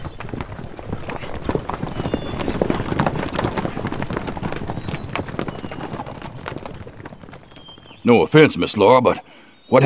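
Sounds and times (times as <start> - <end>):
several horses' hooves clip-clopping as riders leave at a brisk pace: 0.0 - 9.0
speech: 8.1 - 9.8.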